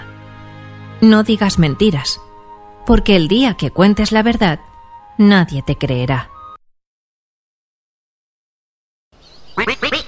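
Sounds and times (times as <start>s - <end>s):
speech: 1.0s - 6.3s, 9.6s - 10.0s
duck quacking: 9.6s - 10.0s.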